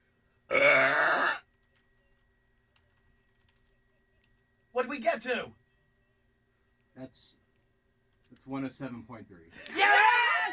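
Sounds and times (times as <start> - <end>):
woman from Virginia burping loudly: 0.5 - 1.4
speech: 4.9 - 5.6, 7.0 - 7.4, 8.3 - 10.5.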